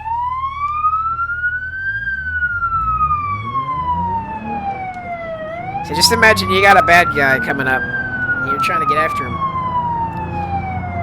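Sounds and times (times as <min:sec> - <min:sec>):
sheriff vehicle siren wailing in a video game: 0:00.0 - 0:11.0
speech: 0:05.9 - 0:08.0, 0:08.6 - 0:09.5.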